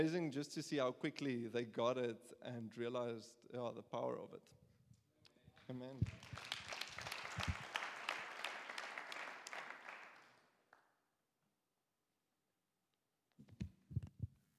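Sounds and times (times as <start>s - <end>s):
speech: 0.0s - 4.6s, 5.7s - 6.6s
audience applause: 5.6s - 10.6s.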